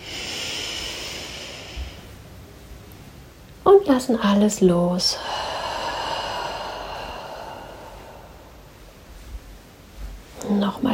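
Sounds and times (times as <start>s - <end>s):
long deep inhalation during guided breathing: 0.0s - 2.1s, 5.1s - 9.0s
speech: 3.7s - 5.5s.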